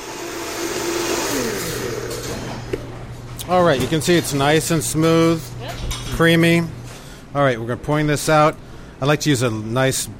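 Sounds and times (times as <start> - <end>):
blender pureeing soup: 0.0 - 2.8
speech: 3.5 - 10.1.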